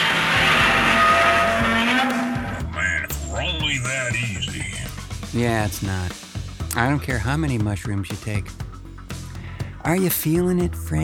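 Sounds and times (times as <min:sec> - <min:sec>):
car tires squealing in a skid: 0:00.0 - 0:02.8
loud car engine roaring: 0:00.0 - 0:03.5
speech: 0:05.3 - 0:06.2, 0:06.8 - 0:08.6, 0:09.8 - 0:11.0.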